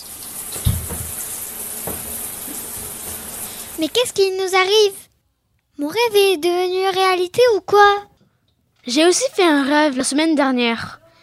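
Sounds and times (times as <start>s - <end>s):
bathroom tap running steadily: 0.0s - 5.0s
speech: 3.8s - 5.0s, 5.8s - 8.1s, 8.8s - 11.0s.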